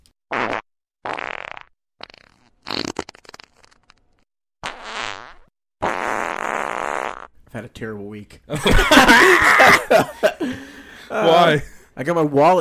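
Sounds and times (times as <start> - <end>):
loud fart sound effects with short blasts and sputtering: 0.3 - 7.4
speech: 7.6 - 12.5
laughter: 8.5 - 11.6.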